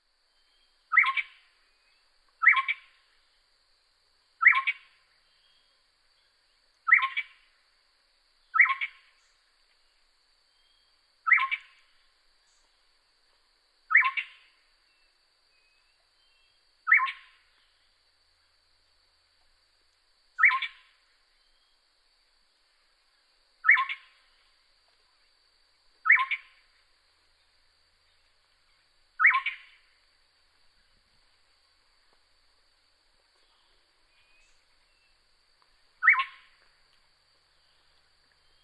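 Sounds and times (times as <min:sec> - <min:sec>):
Yellow-crowned Gonolek Laniarius barbarus calling: 0:00.9 - 0:01.4, 0:02.4 - 0:02.9, 0:04.4 - 0:04.8, 0:06.9 - 0:07.3, 0:08.5 - 0:09.0, 0:11.3 - 0:11.8, 0:13.9 - 0:14.4, 0:16.2 - 0:17.4, 0:20.4 - 0:20.9, 0:23.6 - 0:24.2, 0:26.0 - 0:26.6, 0:29.2 - 0:29.8, 0:36.0 - 0:36.6.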